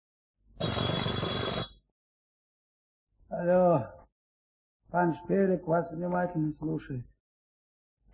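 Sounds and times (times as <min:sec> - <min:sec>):
telephone bell ringing: 0:00.6 - 0:01.8
speech: 0:03.3 - 0:04.0, 0:04.9 - 0:07.1.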